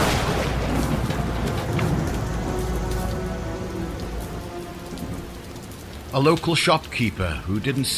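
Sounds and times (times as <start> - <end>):
deep thunder rumbling from a lightning bolt striking a dumpster: 0.0 - 6.2
heavy rain: 0.0 - 7.9
speech: 6.2 - 7.9.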